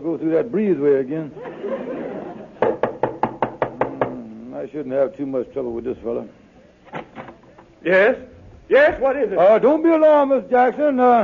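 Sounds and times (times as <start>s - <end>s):
low hiss: 0.0s - 11.2s
speech: 0.2s - 2.0s, 4.6s - 6.4s, 7.8s - 11.2s
laughter: 1.3s - 2.8s
knocking on a door: 2.6s - 4.2s.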